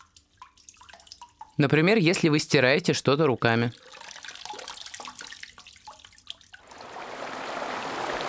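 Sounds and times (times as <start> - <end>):
water drips and trickles: 0.0 - 8.2
speech: 1.6 - 4.0
river water rushing: 6.8 - 8.2.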